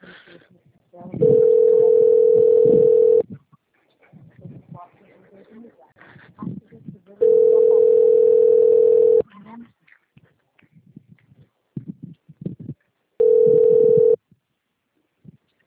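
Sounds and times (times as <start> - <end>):
people talking: 0.0 - 2.0, 4.2 - 8.2
telephone tones while a call is placed: 1.2 - 3.2, 7.2 - 9.2, 13.2 - 14.2.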